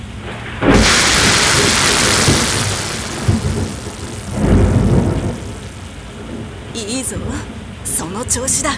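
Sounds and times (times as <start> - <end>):
loud crack of thunder in a thunderstorm: 0.7 - 6.5
steady heavy rain: 0.7 - 6.5
speech: 7.0 - 8.7.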